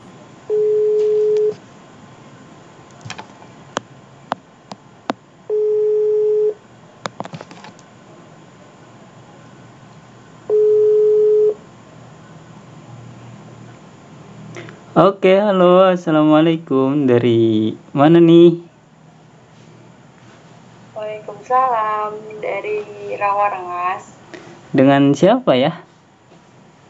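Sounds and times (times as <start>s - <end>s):
phone ringback tone beeps: 0.5s - 1.6s, 5.5s - 6.6s, 10.5s - 11.6s
speech: 15.0s - 18.6s, 21.5s - 25.8s.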